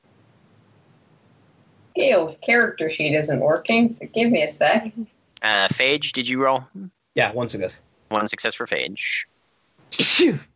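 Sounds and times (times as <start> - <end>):
speech: 2.0 - 9.3, 9.9 - 10.5
sneeze with a voiced exclamation: 9.9 - 10.5.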